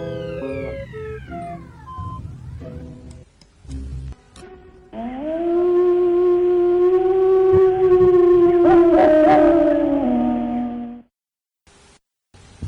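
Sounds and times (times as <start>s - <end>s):
wolf howl: 5.0s - 11.0s.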